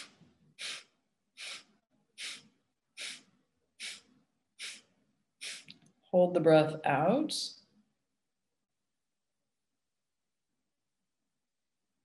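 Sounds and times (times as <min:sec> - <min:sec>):
breathing: 0:00.0 - 0:05.7
short sharp nasal sniffs: 0:00.0 - 0:05.8
speech: 0:06.1 - 0:07.6.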